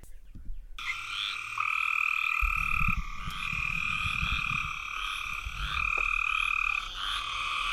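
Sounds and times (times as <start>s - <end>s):
Cope's gray treefrogs buzzy trilling chorus: 0.8s - 7.7s
low rumbling noise: 2.3s - 7.7s.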